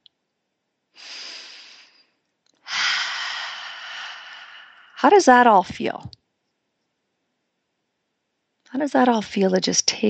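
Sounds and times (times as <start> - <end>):
breathy exhale: 1.0 - 2.1, 2.7 - 5.0
great big deep breath drawn in: 1.0 - 5.0
speech: 5.0 - 6.2, 8.8 - 10.0.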